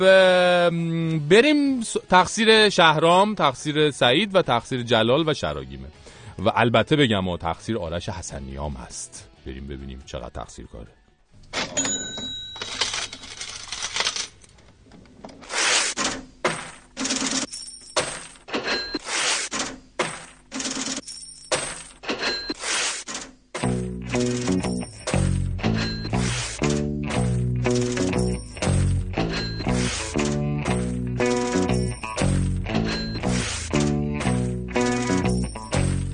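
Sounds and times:
speech: 0.0s - 11.8s
cash register clangs in a rhythmic loop: 11.5s - 14.4s, 15.9s - 36.1s
jingling coins in a rhythmic loop: 11.8s - 14.4s, 17.0s - 19.0s, 20.5s - 22.6s, 24.1s - 26.6s, 27.7s - 30.5s, 31.2s - 34.0s, 34.8s - 35.8s
deep rhythmic bassline: 23.7s - 36.1s.

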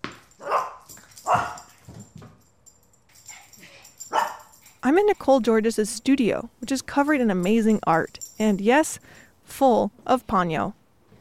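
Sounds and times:
newly adopted dog barking in an art studio: 0.4s - 1.7s, 4.1s - 4.5s
speech: 4.9s - 10.8s.

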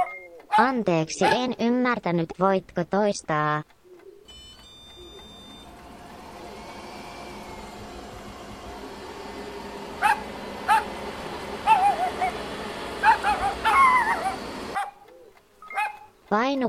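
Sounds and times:
dog barking: 0.0s - 1.5s, 10.0s - 10.9s, 11.7s - 12.4s, 13.0s - 15.0s, 15.7s - 16.1s
speech: 0.6s - 3.8s, 16.4s - 16.6s
loud steady mechanical roar: 4.3s - 14.8s.

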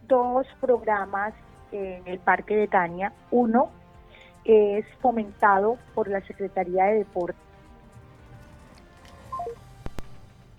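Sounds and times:
faint steady hum: 0.0s - 10.5s
speech: 0.1s - 3.8s, 4.4s - 7.5s
telephone keypad tones redialing a dropped call: 9.3s - 10.2s.

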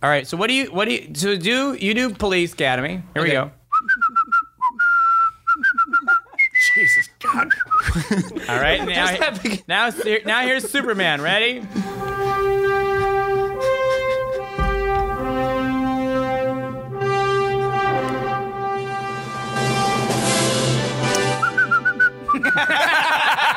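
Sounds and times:
speech: 0.0s - 3.6s, 7.4s - 12.1s, 22.5s - 23.2s
whistled movie-theme melody: 3.7s - 7.9s, 21.1s - 22.8s
laughter: 5.6s - 15.0s, 22.3s - 23.5s
full orchestral backing: 11.2s - 22.3s.

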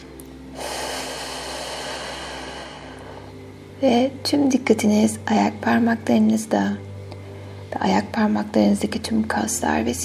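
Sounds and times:
big deep breath drawn in during a guided relaxation: 0.5s - 3.6s
speech: 3.8s - 6.9s, 7.8s - 10.0s.

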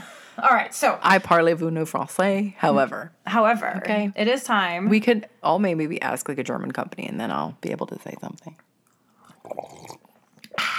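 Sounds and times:
speech: 0.4s - 8.7s
person sipping hot tea: 9.2s - 10.7s.

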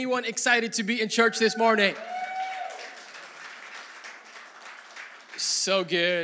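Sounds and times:
speech: 0.0s - 2.2s, 5.6s - 6.2s
audience clapping hands: 1.4s - 6.1s.

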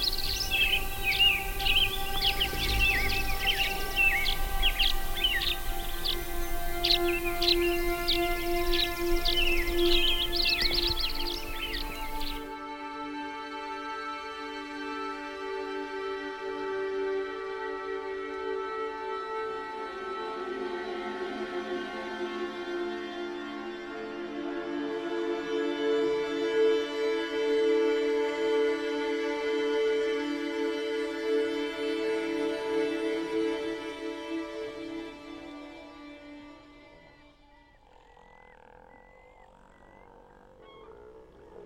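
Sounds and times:
dense rapid bird chirping: 0.0s - 12.5s, 36.4s - 41.6s
slow smeared backwards-sounding music: 0.0s - 37.2s.

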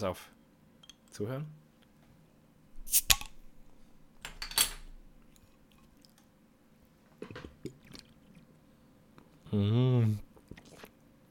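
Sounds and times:
speech: 0.0s - 0.4s, 1.1s - 1.6s, 2.9s - 3.2s, 9.5s - 10.2s
drink opening hiss: 2.9s - 3.3s
sipping and swallowing: 7.2s - 8.6s, 9.2s - 11.0s.

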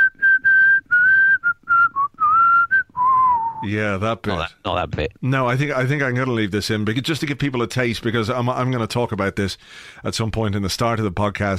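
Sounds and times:
person whistling a short tune: 0.0s - 3.6s
speech: 3.6s - 11.5s.

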